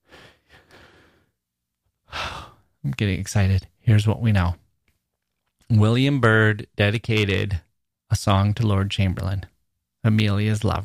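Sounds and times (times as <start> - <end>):
person taking a deep breath: 0.0 - 1.4, 2.1 - 2.7
speech: 2.8 - 4.6, 5.7 - 10.8.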